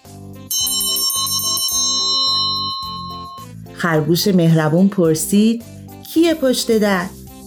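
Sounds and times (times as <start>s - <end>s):
bright electronic doorbell chime: 0.5s - 3.5s
speech: 3.8s - 7.2s.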